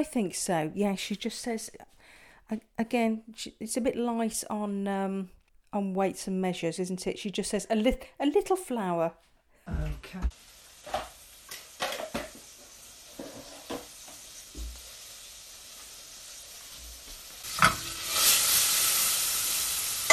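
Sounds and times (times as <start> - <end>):
speech: 0.0 - 1.9, 2.5 - 9.3, 10.1 - 11.0
butter sizzling in a pan while cooking stewed mushrooms: 10.3 - 20.1.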